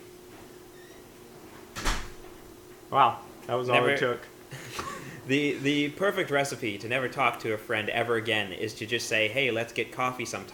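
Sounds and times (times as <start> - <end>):
door swinging and shutting with a woody clunk: 1.7 - 2.4
speech: 2.9 - 4.6, 5.3 - 10.5.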